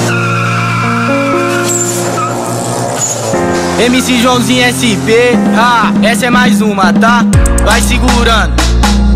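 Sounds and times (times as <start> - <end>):
car tires squealing and skidding: 0.0 - 6.1
car engine roaring and revving: 0.0 - 6.3
speech: 3.8 - 9.0.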